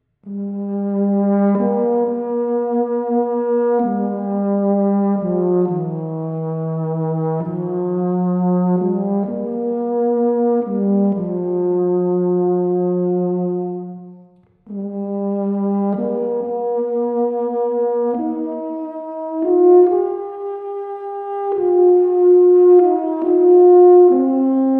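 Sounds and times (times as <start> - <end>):
tenor horn: 0.2 - 24.7.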